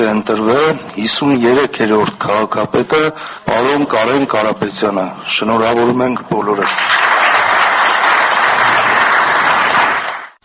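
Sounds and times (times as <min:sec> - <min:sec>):
speech: 0:00.0 - 0:07.2
standing ovation applause in a council hall: 0:06.6 - 0:10.4.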